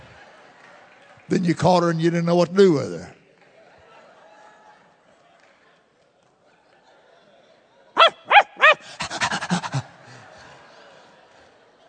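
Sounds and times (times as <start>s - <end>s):
speech: 1.3s - 3.2s
person imitating dog barks: 8.0s - 9.9s
person imitating dog panting: 8.0s - 10.2s
laughter: 8.0s - 11.6s.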